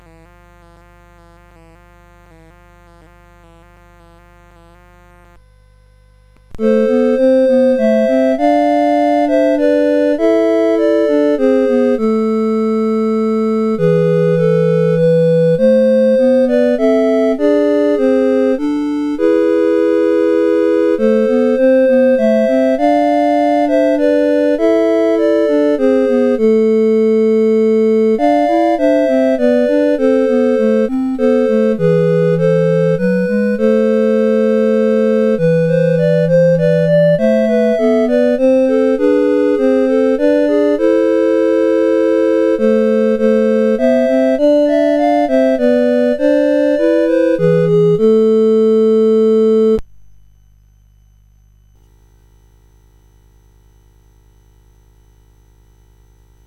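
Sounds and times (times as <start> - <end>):
lullaby music: 6.6 - 49.8.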